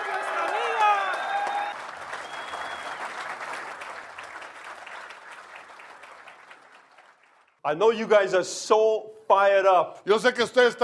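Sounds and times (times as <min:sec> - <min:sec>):
audience applause welcoming a guest: 0:00.0 - 0:07.6
speech: 0:07.6 - 0:10.8.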